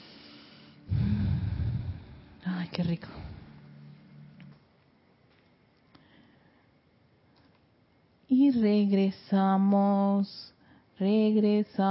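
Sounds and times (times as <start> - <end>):
deep breath in: 0.0 - 2.4
speech: 2.7 - 3.3, 8.5 - 11.9.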